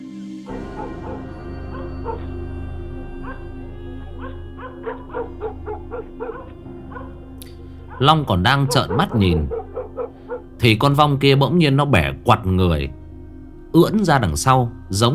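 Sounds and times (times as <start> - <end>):
dogs from several houses barking in the night: 0.5 - 11.4
low hum: 0.5 - 15.1
speech: 8.0 - 9.6, 10.6 - 13.0, 13.7 - 15.1.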